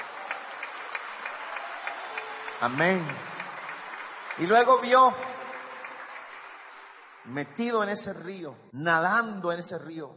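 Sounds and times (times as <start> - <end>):
church congregation applause: 0.0 - 8.5
speech: 2.6 - 3.4, 4.4 - 5.4, 7.2 - 10.1.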